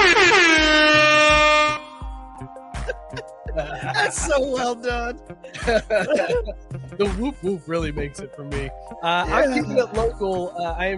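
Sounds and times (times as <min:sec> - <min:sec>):
air horn sound effect: 0:00.0 - 0:02.1
thumping beat: 0:00.0 - 0:10.9
laughter: 0:02.8 - 0:10.9
speech: 0:03.6 - 0:10.9.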